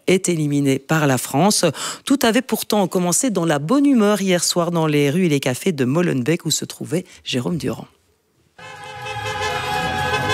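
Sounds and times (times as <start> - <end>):
speech: 0.1 - 8.0
car horns honking in the street: 8.6 - 10.3.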